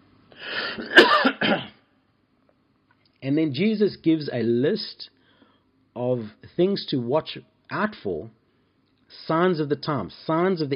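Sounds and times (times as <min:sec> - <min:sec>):
speech: 0:00.4 - 0:01.6, 0:03.2 - 0:05.2, 0:06.0 - 0:08.4, 0:09.1 - 0:10.7
person coughing: 0:00.4 - 0:01.8
person clearing a rough raspy throat: 0:00.6 - 0:01.8.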